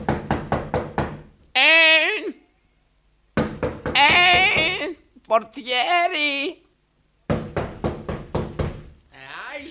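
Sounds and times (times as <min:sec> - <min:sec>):
sharp loud knocking on a door: 0:00.0 - 0:01.3, 0:03.4 - 0:04.9, 0:07.3 - 0:08.9
man calling out in a strained wavering voice: 0:01.5 - 0:02.5, 0:03.9 - 0:06.7, 0:09.1 - 0:09.7
speech: 0:05.3 - 0:06.6.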